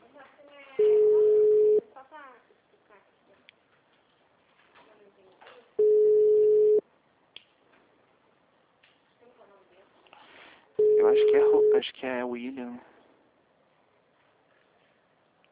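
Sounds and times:
telephone ringing with a mid-pitched electronic tone: 0.8s - 1.8s, 5.8s - 6.8s, 10.8s - 11.8s
speech: 11.1s - 13.0s.

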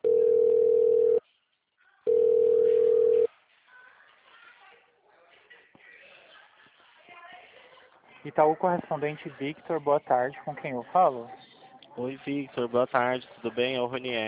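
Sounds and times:
telephone ringing tone while a call is transferred: 0.0s - 1.2s, 2.1s - 3.3s
speech: 8.3s - 11.4s, 12.0s - 14.2s.

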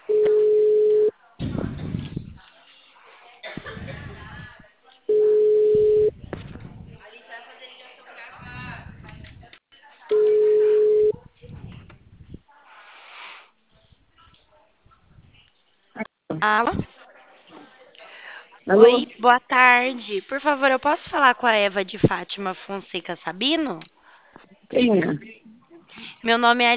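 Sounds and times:
low-pitched telephone ringback tone: 0.0s - 1.1s, 5.1s - 6.1s, 10.1s - 11.1s
speech: 16.4s - 16.8s, 18.7s - 24.0s, 24.7s - 25.4s, 26.2s - 26.7s.

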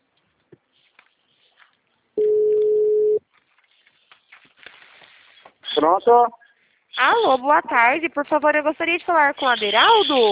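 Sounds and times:
telephone ringing tone of an outgoing call: 2.2s - 3.2s
speech: 5.8s - 6.4s, 7.0s - 10.2s.

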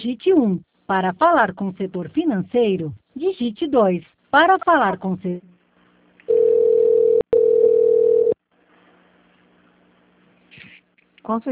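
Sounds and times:
speech: 0.0s - 5.5s, 11.2s - 11.5s
telephone line tone after a transferred call dropped: 6.3s - 8.4s.

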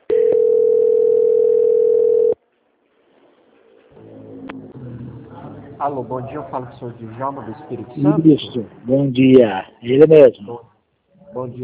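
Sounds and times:
faint noise: 0.0s - 11.6s
steady telephone tone during a call transfer: 0.1s - 2.4s
speech: 5.8s - 10.7s, 11.3s - 11.6s.

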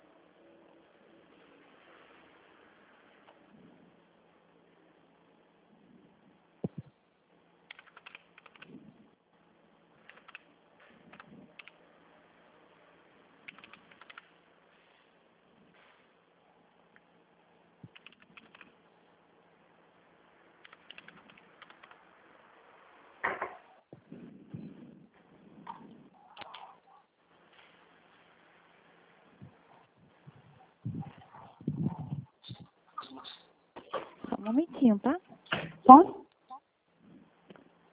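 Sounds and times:
low steady hum: 0.0s - 37.9s
computer keyboard typing: 7.7s - 8.8s, 10.0s - 10.4s, 11.1s - 11.8s, 13.4s - 14.3s, 17.9s - 18.7s, 20.6s - 22.0s, 26.4s - 26.7s
speech: 34.5s - 35.2s, 35.9s - 36.2s.

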